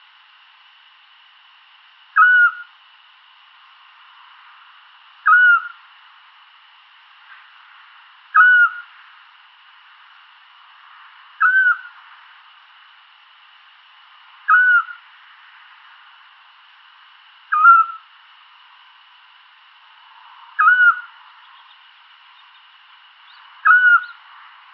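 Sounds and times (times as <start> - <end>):
scops owl Otus scops calling: 2.1 - 2.8, 5.2 - 5.9, 8.3 - 9.0, 11.4 - 12.0, 14.4 - 15.1, 17.5 - 18.1, 20.5 - 24.3.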